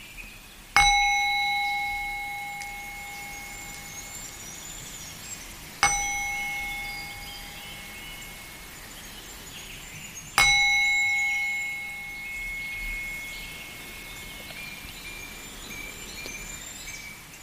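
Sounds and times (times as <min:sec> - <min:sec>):
singing bowl struck and ringing with a clear bright tone: 0:00.8 - 0:09.4, 0:10.4 - 0:17.4.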